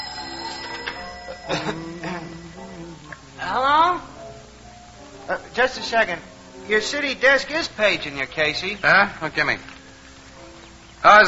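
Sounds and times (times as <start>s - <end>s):
telephone bell ringing: 0.0s - 3.2s
speech: 1.5s - 1.9s, 5.3s - 9.7s, 11.0s - 11.2s.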